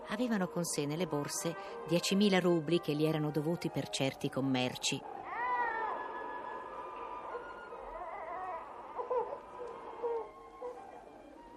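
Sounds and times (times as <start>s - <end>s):
speech: 0.1s - 5.2s
plaintive wavering wailing cry: 0.8s - 11.5s
shorter soft mewling cries: 5.0s - 11.2s.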